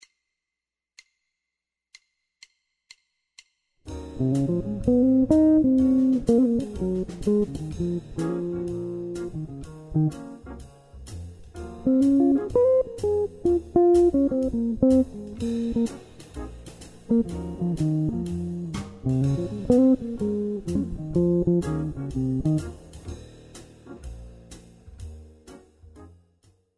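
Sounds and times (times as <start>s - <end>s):
jazz guitar improvisation: 4.2s - 10.4s, 11.7s - 23.0s.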